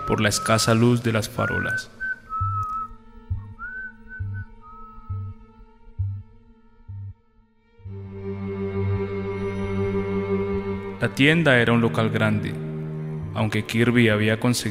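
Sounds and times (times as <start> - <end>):
person whistling a short bright cheerful tune: 0.0 - 5.4
fuller music: 0.0 - 14.6
speech: 0.1 - 2.0, 11.1 - 12.6, 13.4 - 14.6
steady pulsing low beat: 2.3 - 13.6.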